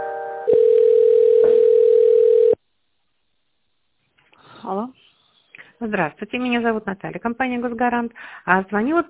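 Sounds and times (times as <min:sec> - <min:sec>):
telephone tones while a call is being transferred: 0:00.5 - 0:02.6
speech: 0:05.9 - 0:09.0.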